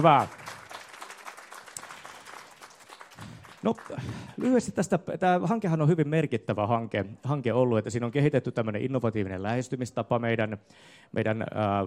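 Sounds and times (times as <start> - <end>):
speech: 0.0 - 0.4, 3.6 - 11.8
faint audience applause for reading volunteers: 0.0 - 4.8.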